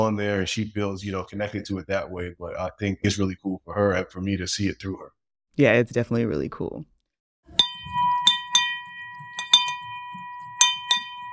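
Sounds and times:
speech: 0:00.0 - 0:06.9
small hand bell ringing: 0:07.6 - 0:11.3.

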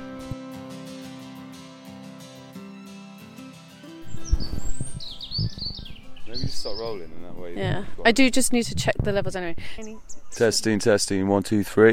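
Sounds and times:
grey wagtail calling in a park: 0:04.0 - 0:07.1
speech: 0:06.5 - 0:11.9.

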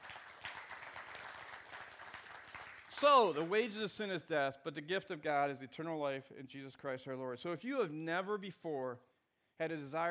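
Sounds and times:
audience applauding: 0:00.0 - 0:03.7
speech: 0:03.0 - 0:10.0.

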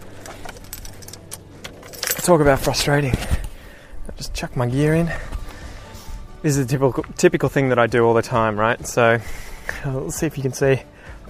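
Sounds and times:
low steady hum of an idling car engine: 0:00.0 - 0:11.2
keys jingling and clinking: 0:00.1 - 0:03.0
speech: 0:02.3 - 0:03.4, 0:04.3 - 0:05.4, 0:06.4 - 0:10.9.

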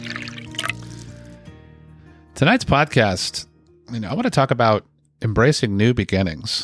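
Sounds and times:
drink pouring into a glass: 0:00.0 - 0:01.4
speech: 0:02.4 - 0:06.6.

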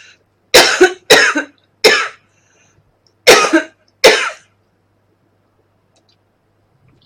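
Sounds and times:
person coughing harshly: 0:00.6 - 0:02.2, 0:03.3 - 0:04.5.

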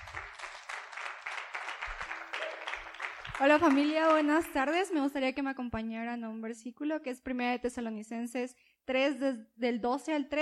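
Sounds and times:
crowd of many hands clapping: 0:00.0 - 0:04.9
speech: 0:03.4 - 0:10.4.

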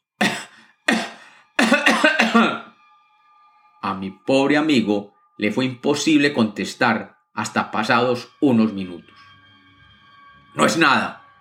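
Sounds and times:
person having a harsh hacking coughing fit: 0:00.2 - 0:02.7
speech: 0:04.0 - 0:09.2, 0:10.6 - 0:11.2.

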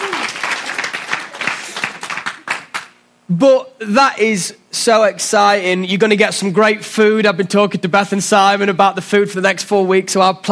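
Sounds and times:
room full of people applauding: 0:00.0 - 0:03.0
speech: 0:03.3 - 0:10.5.

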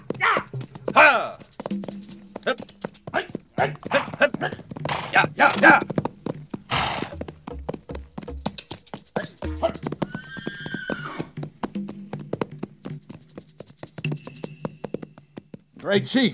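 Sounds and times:
horse hooves clattering: 0:00.0 - 0:16.3
horses neighing and whinnying: 0:02.4 - 0:07.3, 0:09.2 - 0:11.4
men shouting urgent calls: 0:03.2 - 0:05.9
speech: 0:16.0 - 0:16.3.

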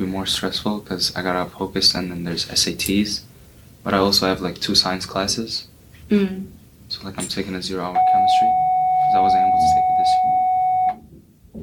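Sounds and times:
speech: 0:00.0 - 0:09.8
electronic bell ringing: 0:08.0 - 0:11.0.

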